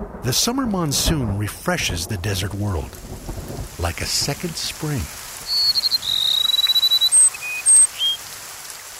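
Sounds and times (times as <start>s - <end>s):
speech: 0.3s - 3.1s, 3.8s - 5.3s
soft outdoor hiss: 0.3s - 8.9s
rufous-winged sparrow singing: 5.5s - 8.2s.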